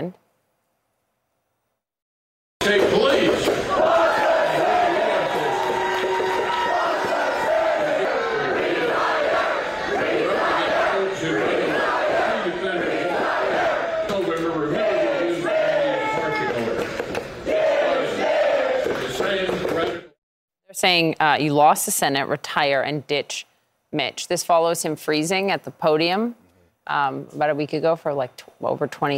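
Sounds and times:
speech: 0.0s - 0.2s, 20.8s - 29.1s
large crowd booing and chanting: 2.6s - 20.2s.

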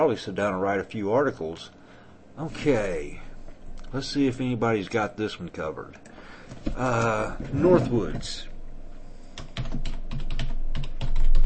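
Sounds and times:
speech: 0.0s - 1.8s, 2.4s - 3.3s, 3.9s - 8.5s
typing a search term on a computer keyboard: 9.4s - 11.4s.

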